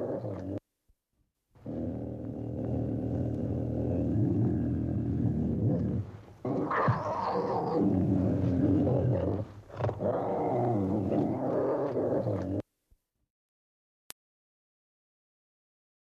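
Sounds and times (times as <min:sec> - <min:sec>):
tiger giving deep rumbling growls: 0:00.0 - 0:00.6, 0:01.6 - 0:12.6.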